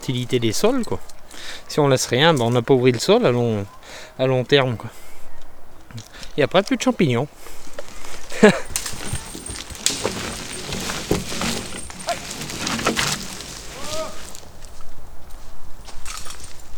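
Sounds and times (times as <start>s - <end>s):
speech: 0.0s - 5.0s, 5.9s - 7.6s, 8.4s - 9.0s
working horse hooves walking on a forest track: 5.4s - 16.7s
soft rustling: 7.3s - 16.7s.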